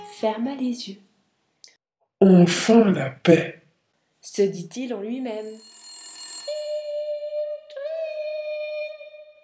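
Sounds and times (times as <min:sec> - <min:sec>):
speech: 0:00.2 - 0:01.1, 0:02.2 - 0:03.6, 0:04.2 - 0:05.8
alarm clock ringing with a sustained shrill tone: 0:05.4 - 0:07.2.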